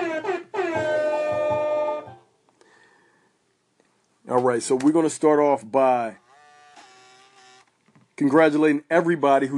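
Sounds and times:
loud brassy air horn sound effect from soundboard: 0.0s - 2.2s
speech: 4.4s - 6.2s, 8.2s - 9.5s.

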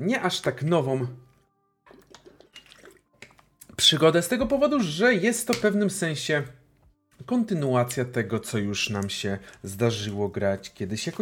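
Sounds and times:
speech: 0.0s - 1.2s, 3.8s - 6.6s, 7.2s - 11.2s
water splashing and trickling: 1.9s - 3.5s.

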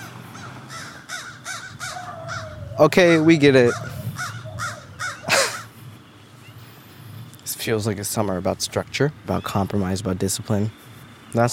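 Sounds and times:
crows cawing: 0.0s - 5.8s
murmur of birds: 0.0s - 11.5s
speech: 2.8s - 3.9s, 7.6s - 11.5s.

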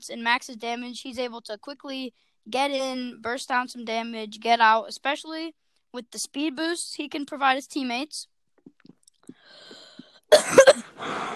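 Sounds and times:
speech: 0.0s - 11.3s
person coughing from something caught in the throat: 10.3s - 11.3s.

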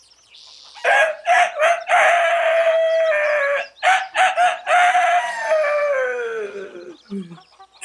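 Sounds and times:
rooster crowing at dawn: 0.8s - 6.9s.

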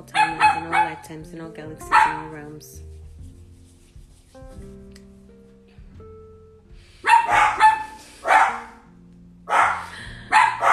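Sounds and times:
speech: 0.0s - 2.9s
dogs barking: 0.1s - 1.0s, 1.9s - 2.3s, 7.0s - 8.9s, 9.5s - 10.7s.

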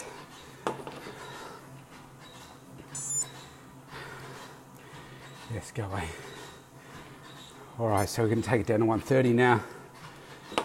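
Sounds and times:
GPS sports watch beeping: 3.0s - 3.4s
speech: 5.5s - 6.3s, 7.8s - 9.8s.

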